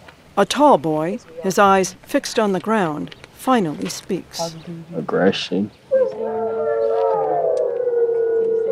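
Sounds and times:
speech: 0.4s - 5.8s
several wolves howling in chorus: 5.9s - 8.7s.

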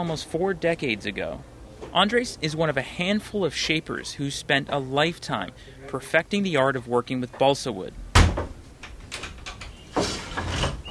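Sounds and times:
speech: 0.0s - 8.0s
bamboo shed door lock clicks and rattles: 8.2s - 9.7s
bamboo shed door scraping and creaking as it slides open: 9.7s - 10.8s.

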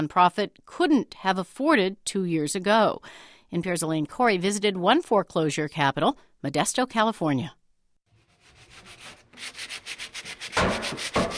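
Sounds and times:
speech: 0.0s - 7.6s
sanding strokes on wooden kitchen cabinets: 8.2s - 11.3s.

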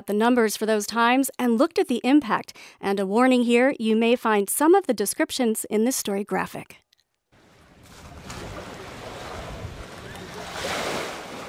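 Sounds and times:
speech: 0.0s - 6.8s
light wind: 7.4s - 11.4s
small sea waves lapping on sand: 7.4s - 11.4s.

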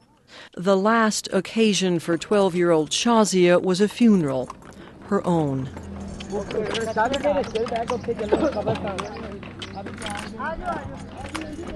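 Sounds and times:
speech: 0.5s - 9.4s, 10.4s - 11.7s
clip-clop of hooves pulling a horse-drawn cart: 4.0s - 11.7s.

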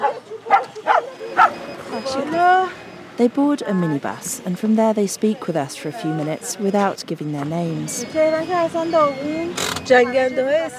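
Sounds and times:
two small dogs barking: 0.0s - 2.3s
speech: 2.0s - 10.7s.

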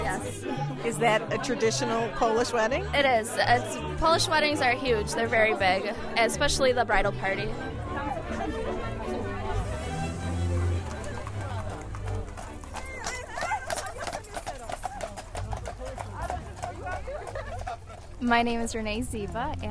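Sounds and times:
crowd chattering and murmuring outdoors: 0.0s - 19.7s
speech: 0.3s - 7.8s, 18.2s - 19.7s
laughter: 7.9s - 18.3s
hooves of horses pulling carriages clip-clopping on pavement: 10.3s - 19.7s.

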